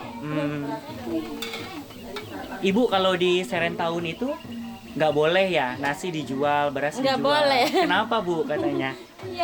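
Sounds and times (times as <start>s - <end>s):
murmur of voices: 0.0s - 9.4s
soft sizzle of sambal goreng ati in a cooking pan: 0.0s - 9.4s
speech: 0.2s - 9.4s
utensil scraping a cooking pan while stirring sambal goreng ati: 1.0s - 2.5s.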